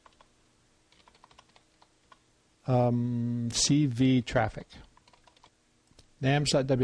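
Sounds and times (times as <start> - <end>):
typing on a computer keyboard: 0.0 - 0.3, 0.9 - 2.2, 4.9 - 5.5
speech: 2.6 - 4.9, 6.2 - 6.8.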